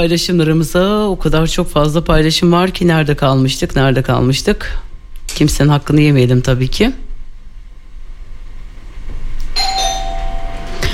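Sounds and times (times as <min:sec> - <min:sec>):
speech: 0:00.0 - 0:07.0
electronic doorbell ringing: 0:09.6 - 0:10.9.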